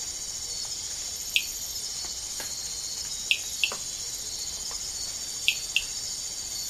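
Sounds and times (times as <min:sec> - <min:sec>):
loud continuous insect buzzing: 0:00.0 - 0:06.6
Amazonian rain frog chirped notes in the Ecuadorian Amazon: 0:01.4 - 0:01.6, 0:05.5 - 0:05.9.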